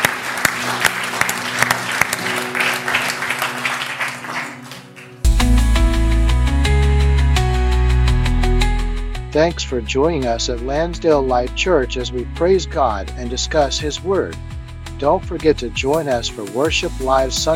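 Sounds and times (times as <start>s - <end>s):
audience applause: 0.0s - 5.3s
soft music: 0.0s - 17.5s
speech: 9.4s - 17.5s.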